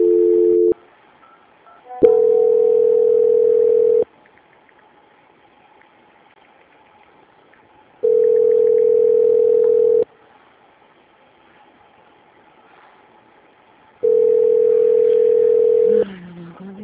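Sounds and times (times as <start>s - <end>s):
telephone line tones on a call being transferred: 0.0s - 4.0s, 8.0s - 10.1s, 14.0s - 16.0s.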